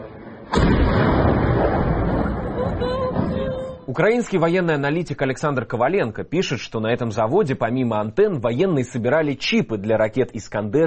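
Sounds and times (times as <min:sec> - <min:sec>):
explosion: 0:00.4 - 0:03.8
speech: 0:03.9 - 0:10.8.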